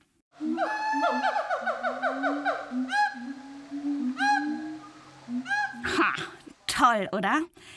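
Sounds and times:
gibbon calls: 0.4 - 6.4
speech: 6.9 - 7.7.

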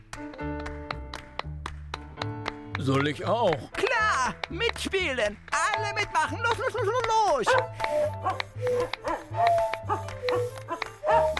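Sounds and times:
speech: 2.8 - 11.3
dog barking with short sharp barks: 7.5 - 11.3.

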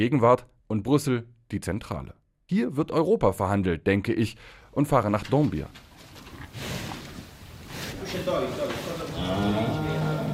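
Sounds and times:
speech: 0.0 - 5.9
steady rustle: 5.7 - 9.2
cows mooing in a barn: 9.0 - 10.3.

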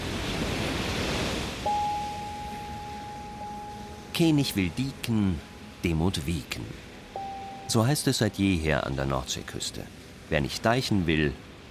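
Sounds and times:
sea surf roaring: 0.0 - 11.6
thin steady high tone: 1.7 - 9.1
speech: 4.2 - 6.9, 7.7 - 11.6.

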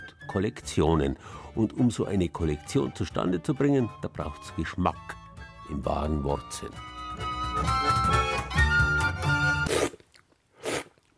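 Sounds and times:
tonal music: 0.0 - 9.8
speech: 0.3 - 8.6
slurping tea through the lips during a tasting: 9.6 - 11.1.

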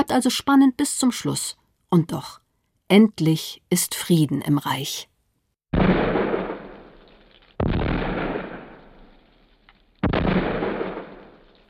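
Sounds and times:
speech: 0.0 - 5.1
ceremonial cannon salute shots: 5.7 - 9.3, 10.0 - 11.6.

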